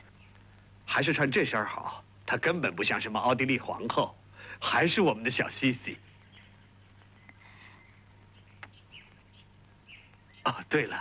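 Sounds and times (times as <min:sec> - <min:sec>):
steady low hum: 0:00.0 - 0:10.8
small pet songbirds chirping in high peeps: 0:00.0 - 0:10.9
speech: 0:01.0 - 0:06.0, 0:10.5 - 0:10.9.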